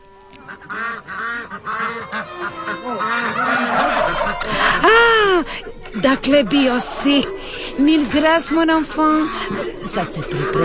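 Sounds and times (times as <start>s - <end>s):
flock of white turkeys, chickens, pigeons, peacocks and Crimean ducks calling in a park: 0.0s - 10.6s
overlapping honks and quacks of white poultry: 0.0s - 10.6s
laughter: 0.4s - 10.6s
speech: 0.6s - 10.6s.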